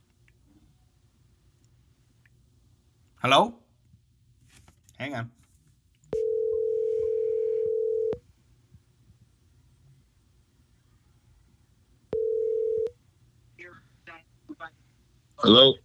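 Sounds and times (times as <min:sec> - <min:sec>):
speech: 0:03.2 - 0:03.6, 0:05.0 - 0:05.4, 0:15.4 - 0:15.8
phone line tone after a dropped call: 0:06.1 - 0:08.2, 0:12.1 - 0:12.9.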